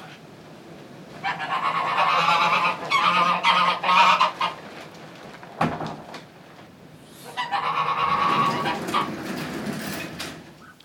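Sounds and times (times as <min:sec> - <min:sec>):
flock of Småland geese honking: 0:01.2 - 0:04.7, 0:07.1 - 0:09.2, 0:10.6 - 0:10.8.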